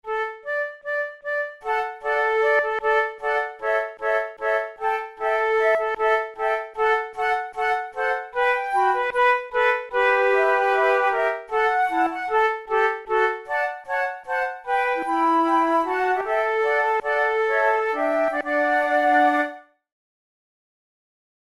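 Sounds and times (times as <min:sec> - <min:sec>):
flute playing in a trio: 0:00.1 - 0:19.8.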